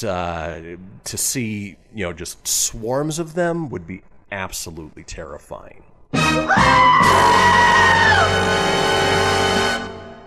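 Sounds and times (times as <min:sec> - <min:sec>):
speech: 0:00.0 - 0:08.8
noise: 0:00.0 - 0:10.2
goat screaming human-like: 0:06.5 - 0:08.4.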